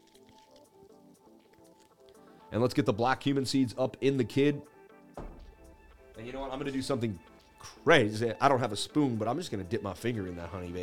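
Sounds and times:
liquid gulps: 0:00.0 - 0:02.4
sipping and slurping lemon water: 0:00.0 - 0:02.4
squishy mouth sounds: 0:00.0 - 0:02.4
speech: 0:02.5 - 0:04.7, 0:06.3 - 0:10.8.

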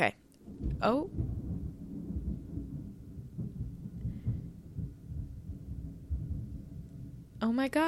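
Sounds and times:
speech: 0:00.0 - 0:01.2, 0:07.4 - 0:07.8
rolling thunder during a storm: 0:00.4 - 0:07.8.

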